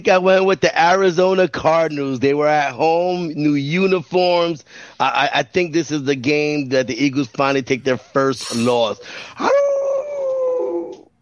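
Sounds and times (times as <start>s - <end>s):
speech: 0.0s - 9.7s
wolf howl: 9.4s - 11.1s.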